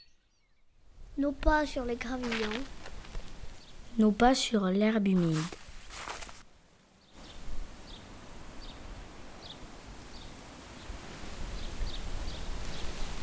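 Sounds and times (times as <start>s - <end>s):
faint high chirps: 0.0s - 0.8s
wind rustling through pear tree leaves: 0.8s - 13.2s
speech: 1.2s - 2.8s, 4.0s - 6.1s.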